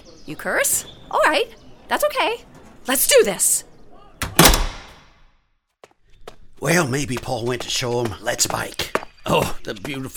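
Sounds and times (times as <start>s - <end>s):
speech: 0.2s - 3.7s, 6.6s - 10.1s
door swinging shut with a knock and a thud: 4.2s - 5.1s.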